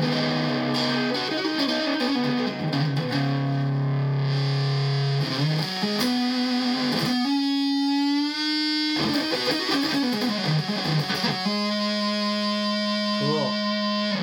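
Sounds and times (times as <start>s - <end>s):
electric guitar through a fuzz pedal on the front pickup: 0.0s - 14.2s.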